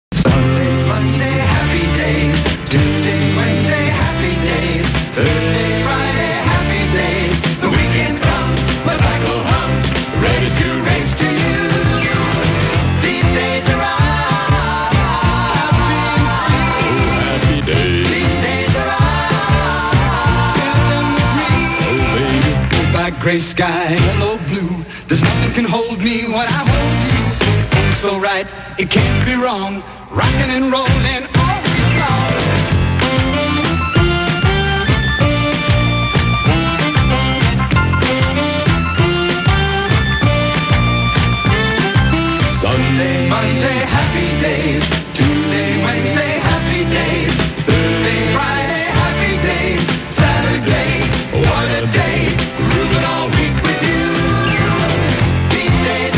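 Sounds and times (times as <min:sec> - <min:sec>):
karaoke singing: 0:00.1 - 0:56.1.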